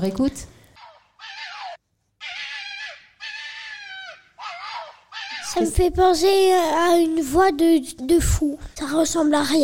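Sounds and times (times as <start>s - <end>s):
speech: 0.0s - 0.6s, 5.6s - 9.6s
red fox calling with loud raspy strained cries: 0.8s - 5.8s.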